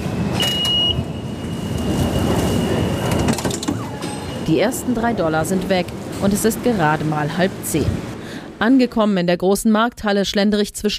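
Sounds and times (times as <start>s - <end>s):
subway train rumbling in motion in Manhattan New York: 0.0s - 9.2s
speech: 4.5s - 10.9s.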